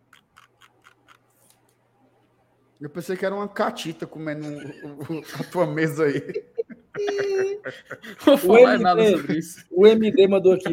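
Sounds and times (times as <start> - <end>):
mouse scroll wheel clicking: 0.1 - 1.6
speech: 2.8 - 6.5, 7.6 - 10.7
laughter: 4.4 - 10.7.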